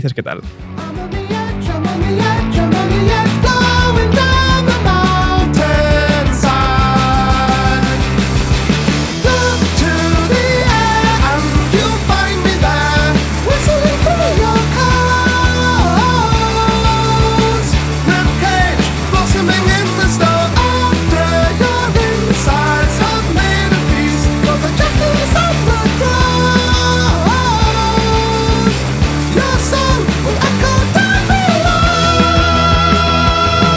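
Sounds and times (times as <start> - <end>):
speech: 0.0 - 3.2
heavy steady rhythm section of a metal song: 0.0 - 33.7
soaring epic distorted guitars of a metal song: 0.0 - 33.7.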